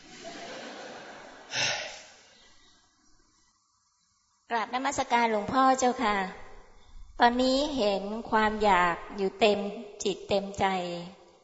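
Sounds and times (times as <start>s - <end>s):
laughter: 0.0s - 1.6s
deep breath close to the microphone: 1.4s - 2.8s
speech: 4.6s - 6.4s, 7.2s - 11.2s.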